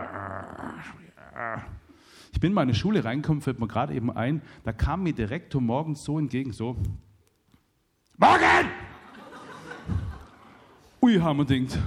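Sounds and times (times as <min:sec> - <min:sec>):
person imitating a dog's growl: 0:00.0 - 0:01.9
speech: 0:00.8 - 0:07.0, 0:08.2 - 0:08.8, 0:11.1 - 0:11.8
laughter: 0:08.8 - 0:10.8.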